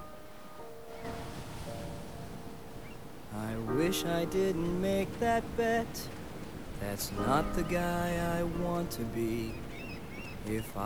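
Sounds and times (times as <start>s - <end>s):
ocean waves washing in surf along the shore: 0.0s - 10.8s
speech: 3.9s - 6.2s, 6.8s - 9.6s, 10.4s - 10.8s.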